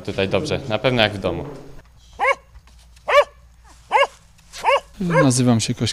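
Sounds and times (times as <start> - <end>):
speech: 0.0 - 1.7, 5.0 - 5.9
dog barking indoors at a water intake works in Aleksandrów: 2.2 - 2.4, 3.1 - 5.4.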